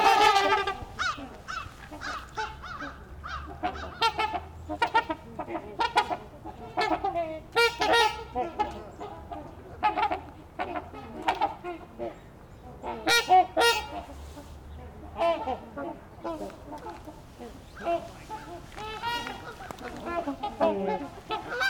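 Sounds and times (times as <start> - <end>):
Trumpeter Swan honking: 0.0 - 12.2, 12.8 - 21.6.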